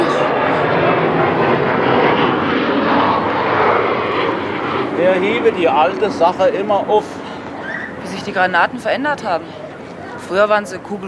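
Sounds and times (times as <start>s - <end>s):
airplane flying over with broadband engine roar: 0.0s - 11.0s
speech: 5.2s - 7.2s, 8.2s - 9.6s, 10.3s - 11.0s.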